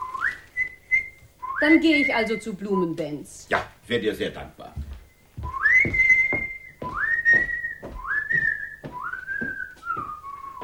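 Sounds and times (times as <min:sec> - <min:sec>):
man whistling an opera melody: 0:00.0 - 0:01.8, 0:05.4 - 0:10.6
speech: 0:01.6 - 0:04.8, 0:05.8 - 0:06.0.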